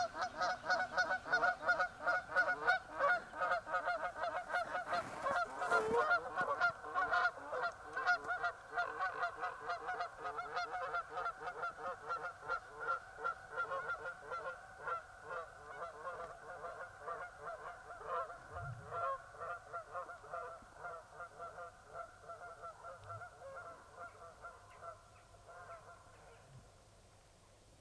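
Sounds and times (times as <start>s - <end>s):
geese honking while flying overhead in Sweden: 0.0s - 26.4s.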